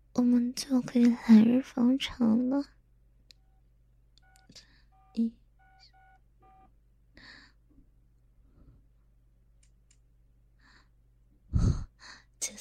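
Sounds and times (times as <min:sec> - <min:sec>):
speech: 0:00.5 - 0:02.8, 0:05.2 - 0:05.4
phone keypad beeps while saving a number: 0:04.2 - 0:06.7
person breathing: 0:07.2 - 0:07.7, 0:10.6 - 0:12.4.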